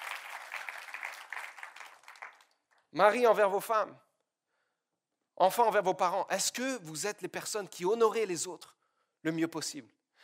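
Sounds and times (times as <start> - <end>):
church congregation applauding: 0.0 - 2.8
speech: 2.9 - 4.1, 5.4 - 10.0.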